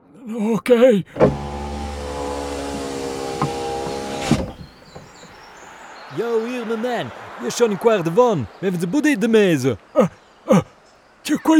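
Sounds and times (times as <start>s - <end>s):
speech: 0.2s - 1.4s, 6.2s - 11.5s
car electric window motor whining: 1.1s - 5.7s.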